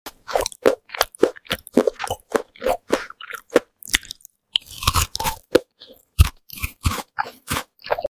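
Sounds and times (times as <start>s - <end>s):
chewing fruit: 0.1s - 8.1s.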